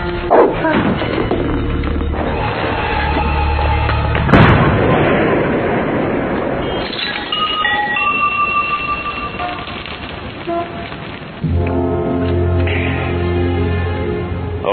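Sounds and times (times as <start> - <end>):
dense loud din of booming blasts and bursts: 0.2 - 14.6
dog barking with a hand grenade in its mouth: 0.3 - 0.7
sharp explosion-like crack: 0.3 - 7.6, 8.9 - 13.9.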